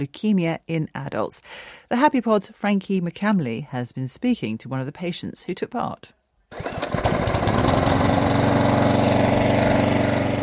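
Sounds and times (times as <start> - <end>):
speech: 0.0 - 7.3
ride-on lawnmower engine running: 6.5 - 10.4.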